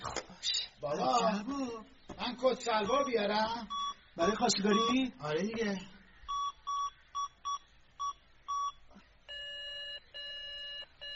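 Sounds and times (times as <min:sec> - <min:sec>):
speech: 0:00.8 - 0:06.0
phone touch-tone dialing beeps: 0:02.8 - 0:05.0, 0:06.3 - 0:11.1.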